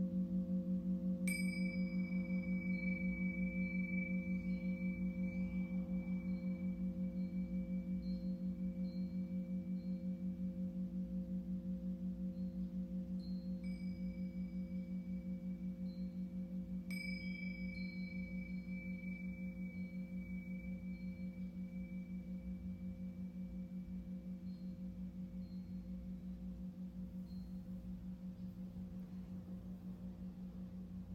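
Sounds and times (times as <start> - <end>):
singing bowl humming with a steady low drone: 0.0 - 31.1.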